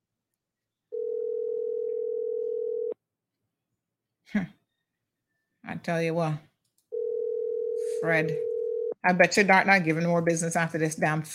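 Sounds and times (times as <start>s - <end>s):
telephone ring tone: 0.9s - 3.0s, 6.9s - 9.0s
speech: 4.3s - 4.6s, 5.7s - 6.5s, 8.0s - 11.3s.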